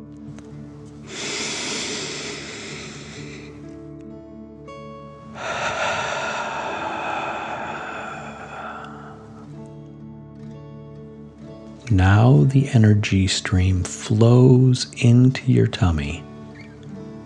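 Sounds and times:
deep breaths in through the nose and out through the mouth: 1.0s - 3.7s, 5.2s - 9.6s
speech: 11.9s - 16.3s.

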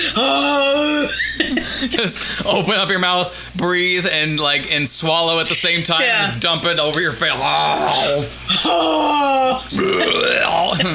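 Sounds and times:
speech: 0.2s - 10.9s
loud drawn-out burp after drinking coffee: 9.7s - 10.9s.

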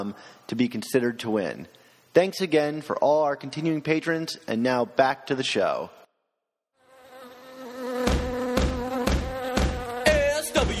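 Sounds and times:
speech: 0.0s - 6.0s
swarm of bees buzzing: 6.8s - 10.2s
sharp rhythmic thumps: 8.0s - 10.7s.

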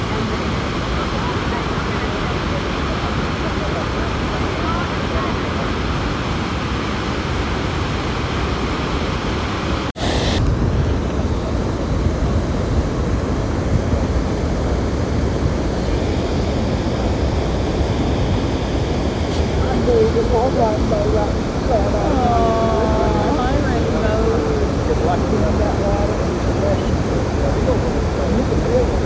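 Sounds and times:
faint voice-like sounds: 0.0s - 6.6s, 15.4s - 29.0s
roaring waterfall: 0.0s - 29.0s.

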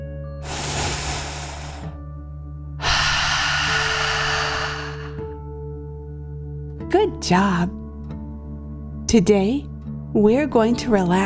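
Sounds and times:
deep breath in through the nose and out through the mouth: 0.4s - 2.1s, 2.8s - 5.4s
speech: 6.9s - 7.8s, 9.1s - 11.2s.

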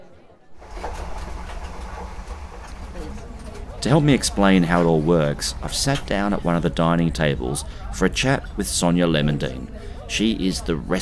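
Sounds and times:
passenger train wheels clicking on rails: 0.6s - 7.3s
passenger train rolling along the rails heard from on board: 0.6s - 11.0s
speech: 3.8s - 11.0s.

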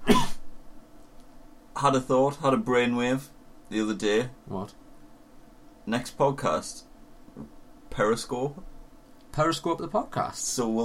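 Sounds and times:
single sharp raspy cough: 0.0s - 0.5s
speech: 1.8s - 4.8s, 5.9s - 8.7s, 9.3s - 10.8s.

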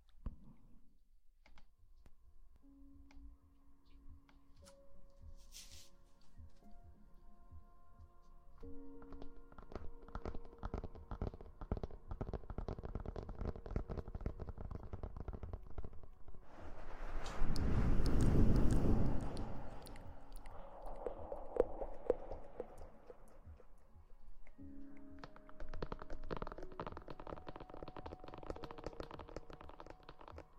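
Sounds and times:
soft hummed tones: 6.8s - 30.5s
wet mouth clicks and taps: 19.8s - 23.8s.

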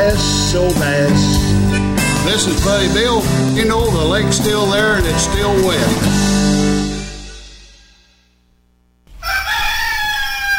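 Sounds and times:
speech: 0.2s - 1.5s, 2.3s - 6.7s
rooster crowing: 9.1s - 10.5s.

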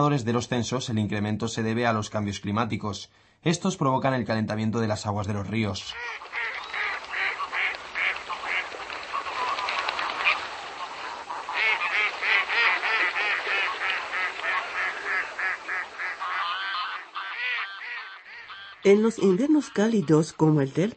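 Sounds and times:
speech: 0.0s - 6.5s, 18.8s - 20.9s
wild ducks quacking in a dense flock: 5.9s - 20.6s
wild geese honking in a dense flock: 6.0s - 20.6s.

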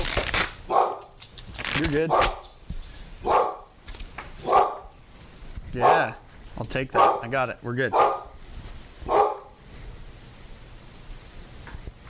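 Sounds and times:
deaf dog barking: 0.7s - 1.1s, 2.1s - 2.4s, 3.2s - 3.7s, 4.4s - 4.9s, 5.8s - 6.2s, 7.0s - 7.3s, 7.9s - 8.4s, 9.0s - 9.6s
speech: 1.8s - 2.4s, 5.8s - 8.2s.

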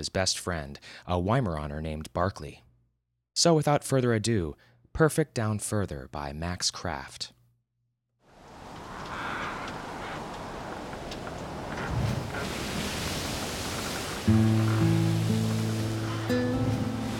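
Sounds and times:
speech: 0.0s - 2.6s, 3.4s - 7.4s, 14.3s - 14.6s
dull roar of ocean waves: 8.3s - 17.1s.

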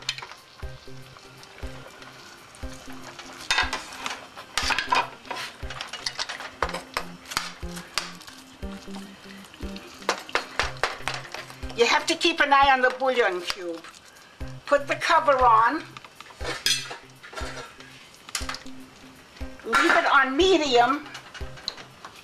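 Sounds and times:
sauce bubbling in a cooking pot: 0.0s - 12.3s, 13.5s - 15.0s
crackling sizzle as meat is put back in: 0.0s - 22.2s
speech: 2.8s - 3.3s, 11.8s - 14.0s, 14.7s - 16.0s, 20.2s - 21.1s.

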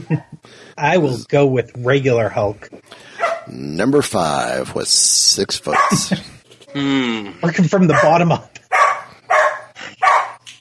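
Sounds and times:
speech: 0.0s - 8.6s
dog barking indoors: 3.1s - 3.6s, 5.7s - 6.1s, 7.9s - 10.4s.

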